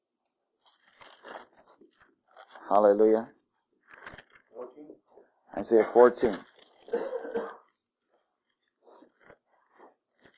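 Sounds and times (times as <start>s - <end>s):
speech: 2.7s - 3.4s, 5.6s - 6.5s
audience coughing during a sermon: 5.7s - 6.2s, 6.9s - 7.7s
audience throat clearing during a sermon: 5.7s - 6.2s, 6.8s - 7.7s.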